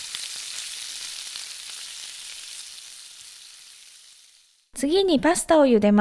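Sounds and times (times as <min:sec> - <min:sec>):
pork sizzling and crackling in a hot pan: 0:00.0 - 0:04.7
speech: 0:04.8 - 0:05.9.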